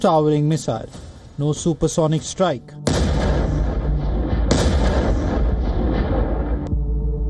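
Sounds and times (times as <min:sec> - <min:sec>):
speech: 0:00.0 - 0:02.8
loud explosion of a Soviet-era bomb weighing around 3 tons: 0:02.9 - 0:06.7
second blast: 0:02.9 - 0:06.7
deep lingering low-frequency boom: 0:02.9 - 0:07.1.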